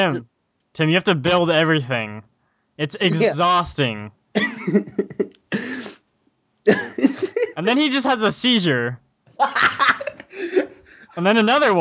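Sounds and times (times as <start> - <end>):
speech: 0.0 - 5.6, 6.6 - 9.8, 11.2 - 11.7
laughter: 4.4 - 5.7, 6.7 - 7.7, 9.4 - 11.1
person coughing with a raspy hack: 4.4 - 6.0, 6.7 - 7.6.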